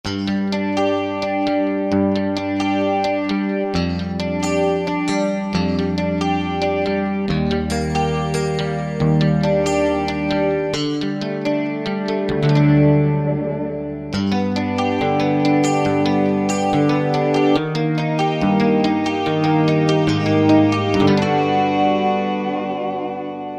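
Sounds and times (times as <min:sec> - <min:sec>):
Alesis QS8 synthesizer Fat Strat factory preset: 0:00.0 - 0:23.5.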